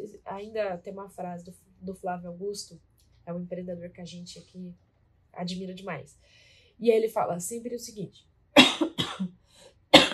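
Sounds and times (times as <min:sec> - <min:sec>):
speech: 0:00.4 - 0:08.3
faint breath: 0:06.2 - 0:06.8, 0:09.4 - 0:09.9
man coughing: 0:08.6 - 0:09.3.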